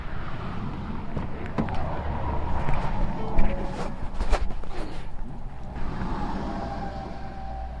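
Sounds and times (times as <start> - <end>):
heavy lorry engine rumbling: 0.0 - 7.7
faint clicks and scrapes: 0.7 - 6.5.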